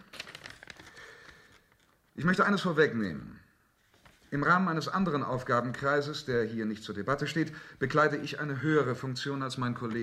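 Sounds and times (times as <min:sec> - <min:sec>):
papers rustling and crinkling as they are handled: 0:00.0 - 0:02.2, 0:03.8 - 0:04.4
speech: 0:02.2 - 0:03.4, 0:04.3 - 0:10.0.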